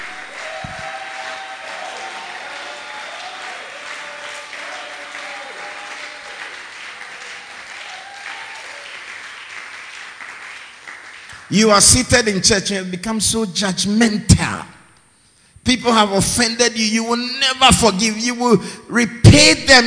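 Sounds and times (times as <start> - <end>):
cheers and shouts from church audience: 0.0 - 9.1
large church audience clapping: 0.0 - 12.3
speech: 11.5 - 14.7, 15.7 - 19.8.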